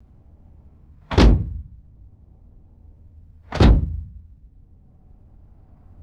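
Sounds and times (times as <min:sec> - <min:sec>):
metallic car doors closing: 0:01.1 - 0:01.8, 0:03.5 - 0:04.2.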